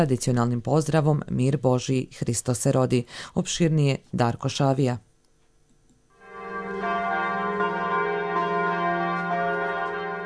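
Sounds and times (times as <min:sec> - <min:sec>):
speech: 0:00.0 - 0:05.1
Orthodox church bells ringing at midnight to mark Christmas: 0:06.2 - 0:10.2.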